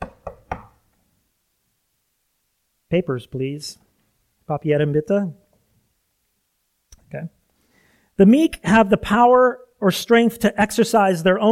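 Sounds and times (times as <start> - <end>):
knocking on a door: 0.0 - 0.8
speech: 2.9 - 3.9, 4.5 - 5.4, 7.1 - 7.4, 8.2 - 11.4.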